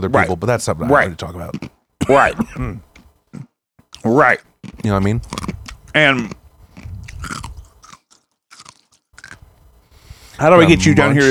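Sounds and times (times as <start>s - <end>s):
speech: 0.0s - 6.4s, 10.4s - 11.2s
crunching ice cubes while chewing: 7.1s - 9.4s.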